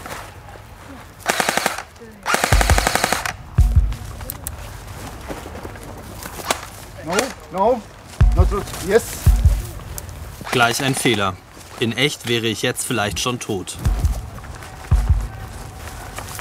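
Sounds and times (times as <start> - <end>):
automatic gunfire during a weapons training exercise: 1.2 - 3.4
quiet movement noise: 2.5 - 16.3
speech: 7.1 - 9.2, 10.5 - 14.0.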